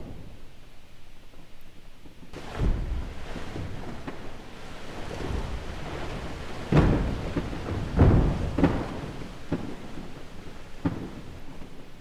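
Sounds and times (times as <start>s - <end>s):
ice calving: 2.3s - 11.5s.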